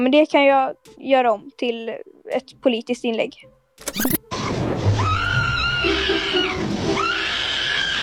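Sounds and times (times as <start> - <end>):
speech: 0.0 - 4.2
AI-generated monkey screaming: 5.0 - 8.0.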